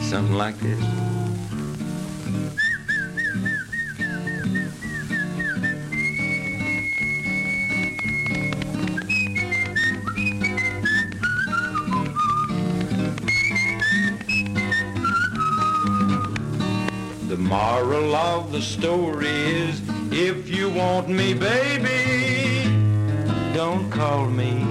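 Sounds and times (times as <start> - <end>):
steady full backing music: 0.0 - 24.6
speech: 0.1 - 1.0, 2.3 - 2.7, 17.4 - 22.3, 23.6 - 24.6
person whistling a melodic call: 2.4 - 16.5.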